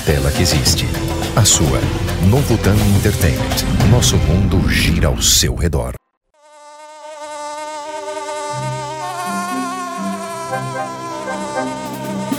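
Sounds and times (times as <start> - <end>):
speech: 0.0 - 6.0
Aedes aegypti mosquito buzzing: 6.3 - 12.3.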